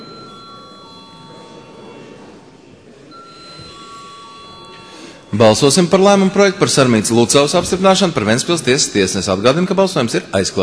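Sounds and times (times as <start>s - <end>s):
electric voting bell ringing in the Latvian parliament: 0.0s - 2.4s, 3.1s - 7.6s
murmur of room noise: 0.0s - 10.6s
speech: 5.4s - 10.6s.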